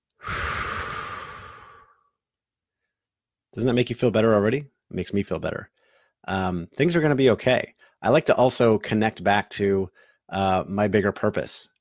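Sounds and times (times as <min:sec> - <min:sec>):
deep breath in and out: 0:00.1 - 0:02.2, 0:05.8 - 0:06.2, 0:09.9 - 0:10.2
speech: 0:03.6 - 0:11.7.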